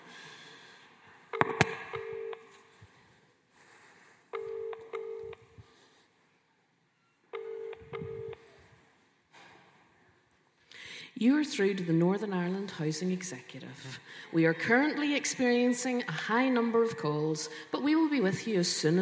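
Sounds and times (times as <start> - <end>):
outgoing call ringing tone through a phone line: 1.3 - 2.6, 4.3 - 5.6, 7.3 - 8.5
speech: 11.2 - 19.0.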